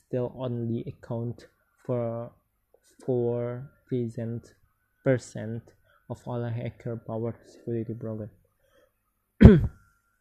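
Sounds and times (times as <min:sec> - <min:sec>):
speech: 0:00.1 - 0:08.4, 0:09.4 - 0:09.8
husky cough: 0:09.4 - 0:09.8.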